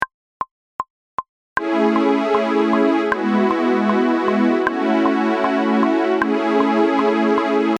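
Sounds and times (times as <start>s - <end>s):
synth strings: 1.6s - 7.7s.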